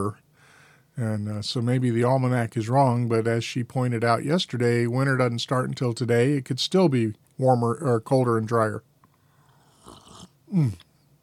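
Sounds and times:
speech: 0.0 - 0.2, 1.0 - 8.9, 10.5 - 10.9
slurping sip of hot coffee: 9.4 - 10.9
voiced sigh of satisfaction: 10.5 - 10.9.

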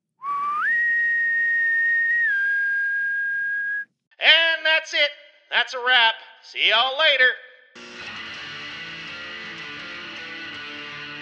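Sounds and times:
long whistle: 0.2 - 3.9
speech: 4.9 - 7.9.

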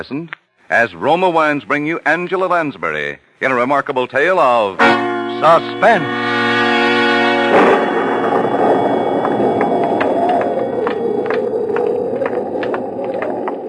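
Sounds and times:
speech: 0.0 - 6.3
sustained musical chord: 4.8 - 9.6
distant thunder from an approaching storm: 5.8 - 13.6.

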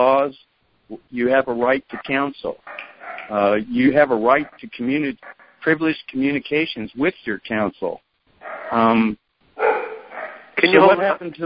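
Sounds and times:
speech: 0.0 - 8.0, 8.7 - 9.2, 10.6 - 11.4
dog barking: 2.0 - 3.6, 5.2 - 5.6, 8.4 - 9.0, 9.6 - 11.0.

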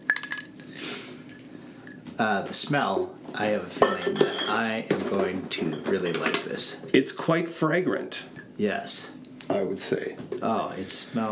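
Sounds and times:
ice cubes clinking into a glass: 0.0 - 0.6
speech: 2.2 - 11.3.

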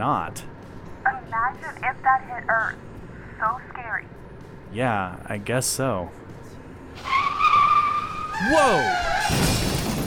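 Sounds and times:
speech: 0.0 - 0.6, 1.3 - 6.2, 8.4 - 9.7
car tires skidding on pavement as a car swerves off the road: 7.0 - 9.9.

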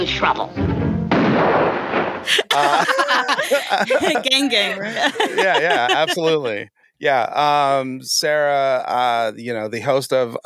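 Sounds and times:
speech: 0.0 - 0.8, 1.4 - 10.4
gunfire sound effect: 1.1 - 2.3
sharp bright gunshots: 1.1 - 2.3
laughter: 2.3 - 9.2.

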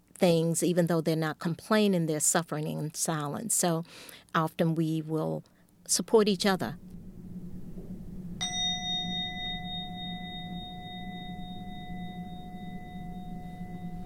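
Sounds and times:
speech: 0.2 - 7.0
low hum: 0.2 - 14.0
meditation bell being struck: 8.4 - 14.0.

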